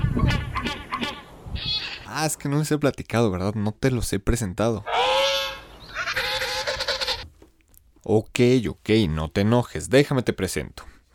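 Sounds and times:
penguin calling with a harsh braying honk and pulsing squawks: 0.0s - 2.1s, 4.8s - 7.2s
speech: 2.2s - 5.3s, 8.0s - 11.0s.

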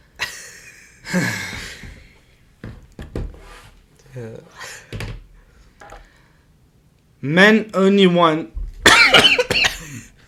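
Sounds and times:
speech: 1.2s - 1.4s, 4.2s - 4.8s, 7.2s - 8.6s
person coughing harshly: 8.9s - 10.2s.

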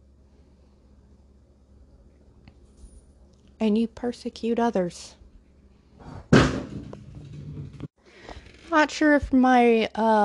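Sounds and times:
speech: 3.6s - 5.2s, 8.7s - 10.2s
glass mason jar knocked off by a cat: 6.3s - 7.0s.

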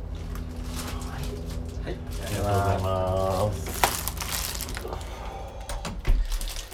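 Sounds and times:
plastic packaging of a package from the United States crinkling in Japan: 0.5s - 5.1s, 6.2s - 6.7s.

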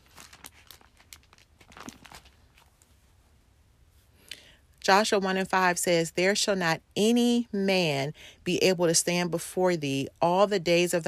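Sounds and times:
thin pages of a paper Bible turning: 0.0s - 2.9s
speech: 4.9s - 11.0s.

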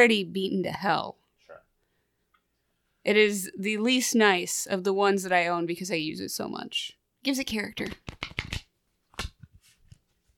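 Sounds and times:
speech: 0.0s - 1.2s, 3.0s - 8.4s
cards tapping and settling: 7.8s - 10.0s
deck of cards being shuffled: 7.8s - 10.3s.

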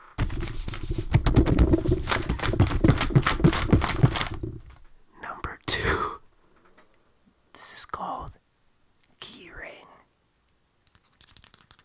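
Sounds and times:
paper crinkling and rustling while being handled: 0.0s - 5.0s.

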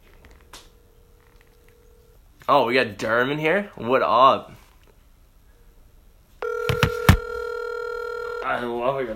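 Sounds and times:
telephone dial tone: 0.3s - 2.2s, 6.4s - 8.6s
speech: 2.5s - 4.6s, 8.6s - 9.1s
keypad taps dialing an outgoing phone call: 6.6s - 7.2s.

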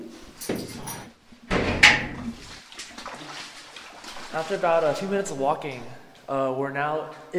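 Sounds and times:
heavy metal door into a cave being opened: 0.4s - 2.2s
speech: 4.4s - 7.3s.

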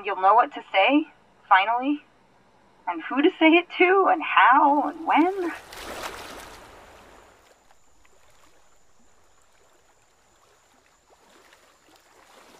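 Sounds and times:
speech: 0.0s - 2.1s, 2.9s - 6.0s
stream water rushing: 4.4s - 12.5s.

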